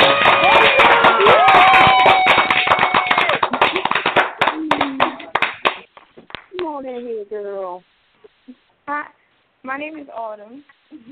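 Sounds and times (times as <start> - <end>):
whooping: 0.0 - 3.6
studio audience applauding to welcome a guest: 0.0 - 5.9
speech: 9.8 - 11.1.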